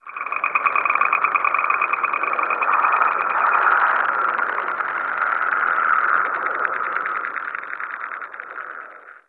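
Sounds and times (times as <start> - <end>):
random data transmission ambient: 0.0 - 8.6.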